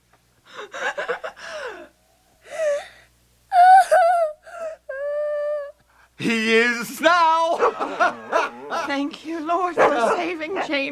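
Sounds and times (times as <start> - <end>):
young boy gasping for air as breathing resumes: 0.5 - 5.4
laughter: 0.6 - 1.4, 7.4 - 9.2
young boy whimpering and crying: 1.4 - 5.8
speech: 8.9 - 10.9.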